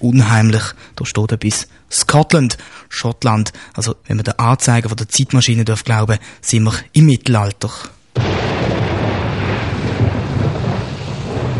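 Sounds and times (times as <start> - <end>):
speech: 0.0 - 8.8
heavy low rumble of thunder in a thunderstorm: 8.2 - 11.5
windy rushing wash in a thunderstorm: 8.9 - 11.5.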